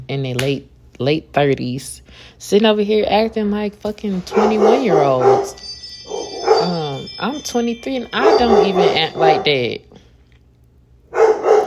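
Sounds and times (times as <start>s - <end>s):
speech: 0.1s - 5.7s, 6.6s - 9.9s
dog barking: 4.3s - 5.6s, 8.2s - 9.6s, 11.1s - 11.6s.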